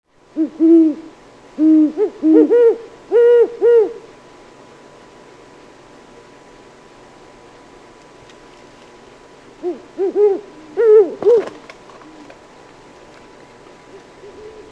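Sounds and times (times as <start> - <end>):
great horned owl giving deep hoots: 0.3 - 4.1, 9.6 - 12.4, 13.9 - 14.6
speech: 0.4 - 2.9.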